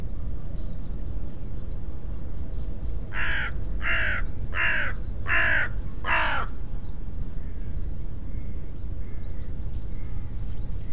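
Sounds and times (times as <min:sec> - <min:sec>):
steady low rumble: 0:00.0 - 0:10.9
bird giving harsh caws: 0:03.1 - 0:06.5.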